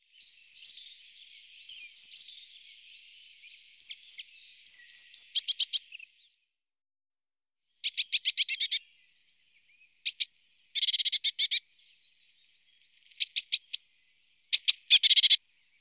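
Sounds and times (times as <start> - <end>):
Eurasian blue tit giving high thin calls: 0.1 - 6.2, 7.8 - 9.0, 10.0 - 11.6, 12.8 - 13.9, 14.5 - 15.4.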